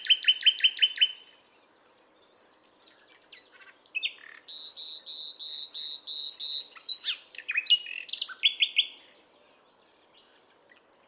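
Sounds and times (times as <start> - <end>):
Luscinia megarhynchos common nightingale singing: 0.0 - 11.0.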